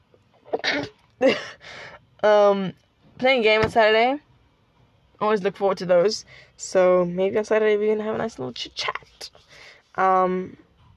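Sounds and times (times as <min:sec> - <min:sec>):
person sneezing: 0:00.5 - 0:01.5
speech: 0:00.7 - 0:04.3, 0:05.2 - 0:10.6.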